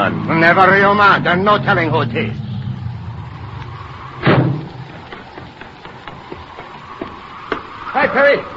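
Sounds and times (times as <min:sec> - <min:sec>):
speech: 0:00.1 - 0:02.5, 0:08.0 - 0:08.5
car door slamming: 0:04.2 - 0:04.7.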